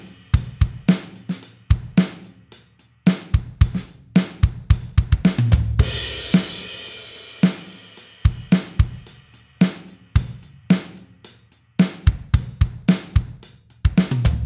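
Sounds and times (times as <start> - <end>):
kick drums: 0.3 - 1.0, 1.7 - 2.1, 3.3 - 6.5, 8.3 - 9.1, 11.9 - 14.4.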